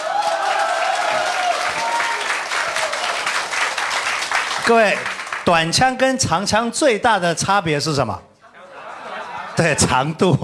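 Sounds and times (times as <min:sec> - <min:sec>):
audience applause: 0:00.0 - 0:05.6
speech: 0:04.7 - 0:08.3, 0:09.6 - 0:10.4
laughter: 0:08.4 - 0:10.4.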